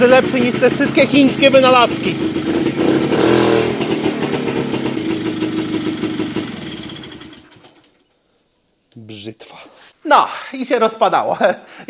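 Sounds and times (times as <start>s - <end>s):
speech: 0.0s - 2.7s, 10.1s - 11.8s
motorcycle engine idling: 0.0s - 8.1s.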